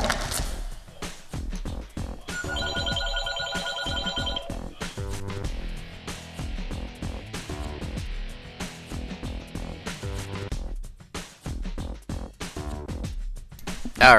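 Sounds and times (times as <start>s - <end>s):
busy continuous musical background: 0.0s - 14.1s
telephone bell trilling: 2.3s - 4.6s
speech: 14.0s - 14.1s.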